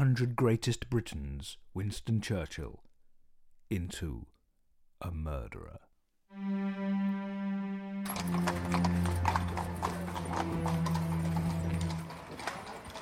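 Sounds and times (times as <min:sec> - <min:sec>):
speech: 0:00.0 - 0:02.9, 0:03.7 - 0:04.4, 0:05.0 - 0:07.0
horse hooves clip-clopping on a hard surface: 0:08.1 - 0:13.0.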